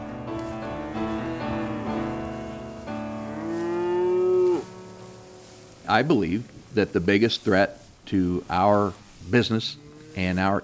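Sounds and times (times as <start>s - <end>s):
cattle mooing in the open: 0.8s - 2.5s, 3.2s - 4.7s, 9.0s - 10.6s
speech: 5.9s - 10.6s.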